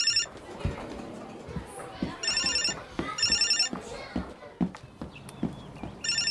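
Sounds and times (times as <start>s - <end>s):
mobile phone ringtone chirping at a cultural centre in Gothenburg: 0.0s - 0.3s, 2.2s - 3.7s, 6.0s - 6.2s
voices murmuring in the room: 0.0s - 6.2s.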